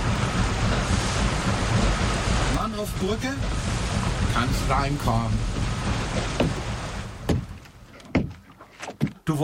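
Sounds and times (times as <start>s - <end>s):
low rumble: 0.0s - 7.9s
open sea water rushing: 0.0s - 8.6s
speech: 2.8s - 3.7s, 4.4s - 6.3s.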